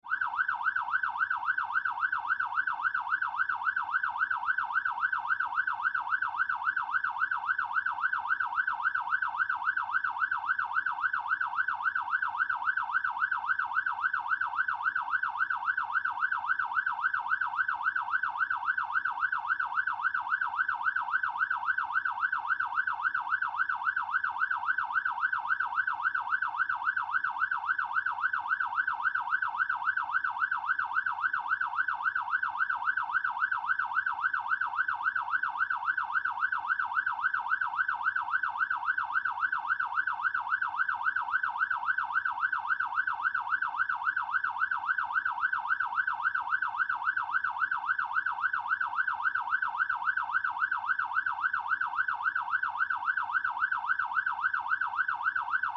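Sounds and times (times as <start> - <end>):
emergency fire truck siren heard from the interior cab: 0.0 - 55.7.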